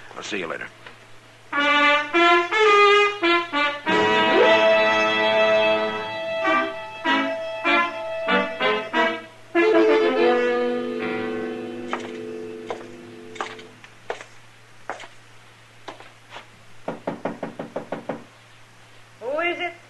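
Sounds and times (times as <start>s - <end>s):
low steady hum: 0.0s - 16.8s
speech: 0.2s - 0.9s
marshal knocking firmly on a door: 16.8s - 18.3s.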